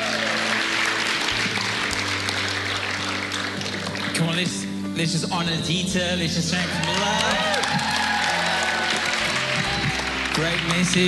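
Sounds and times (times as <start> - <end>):
large crowd applauding: 0.0 - 4.7, 6.5 - 11.0
speech: 4.2 - 7.9, 10.4 - 11.0.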